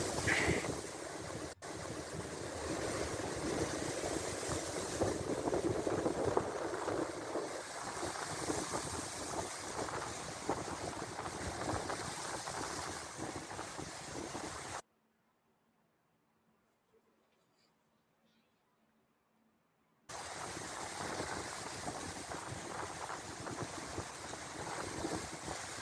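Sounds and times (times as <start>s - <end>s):
strong wind roaring on a lake: 0.0s - 14.8s, 20.1s - 25.7s
waves churning on a lake: 0.0s - 14.8s, 20.1s - 25.7s.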